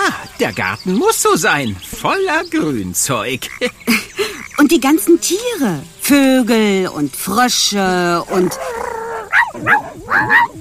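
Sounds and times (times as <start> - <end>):
speech: 0.4 - 8.8, 9.6 - 10.5
dog barking with short yipping barks: 8.4 - 10.5.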